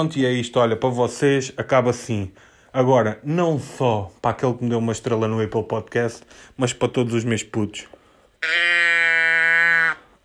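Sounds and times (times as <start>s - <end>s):
speech: 0.0s - 8.8s
toy sound box imitating a Swiss goat or cow: 8.4s - 10.1s.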